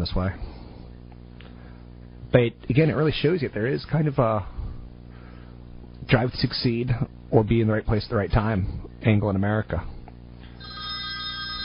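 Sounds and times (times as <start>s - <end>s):
speech: 0.0s - 0.6s, 2.3s - 4.6s, 6.1s - 9.9s
telephone ringing with bright electronic tone: 10.6s - 11.6s.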